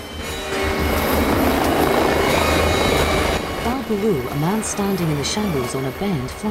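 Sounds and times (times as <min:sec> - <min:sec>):
helicopter flying low overhead: 0:00.0 - 0:06.4
loud continuous helicopter engine whine: 0:00.0 - 0:06.4
helicopter rotor thumping in a steady low beat: 0:00.8 - 0:05.5
speech: 0:03.9 - 0:06.4.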